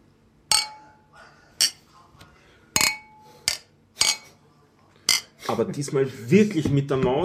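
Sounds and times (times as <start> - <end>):
beer glasses clinking together in a toast: 0.5 - 1.0, 2.8 - 4.4, 5.1 - 5.4
speech: 5.5 - 7.2.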